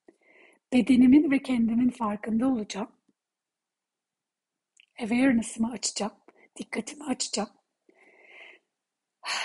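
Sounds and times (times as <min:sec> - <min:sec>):
speech: 0:00.7 - 0:03.0, 0:05.0 - 0:07.6
slow deep breath drawn in: 0:07.9 - 0:08.7.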